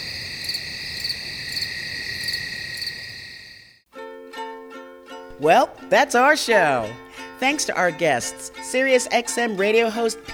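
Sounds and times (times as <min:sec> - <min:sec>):
chorus of crickets chirping: 0:00.0 - 0:03.8
speech: 0:05.4 - 0:10.3.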